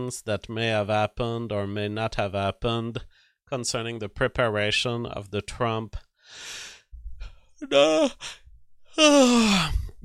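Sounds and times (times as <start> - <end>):
speech: 0.0 - 6.7, 7.6 - 8.4, 9.0 - 10.0
person yawning: 7.6 - 10.0.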